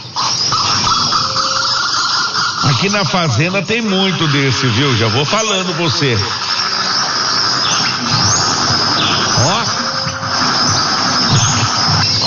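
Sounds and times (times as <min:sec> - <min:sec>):
insects buzzing: 0:00.0 - 0:12.2
songbird chirping and trilling outdoors: 0:00.0 - 0:12.2
low rumbles: 0:02.4 - 0:12.2
speech: 0:02.8 - 0:06.5.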